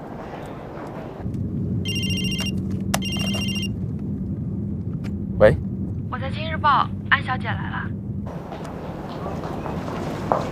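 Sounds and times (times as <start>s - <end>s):
low rumble: 0.0s - 10.5s
telephone ringing: 1.9s - 3.8s
speech: 5.4s - 5.6s, 6.3s - 8.0s.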